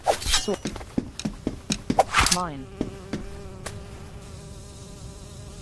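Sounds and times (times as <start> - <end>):
wasp buzzing in a video game: 0.2 - 5.6
speech: 0.5 - 0.9, 2.4 - 2.8.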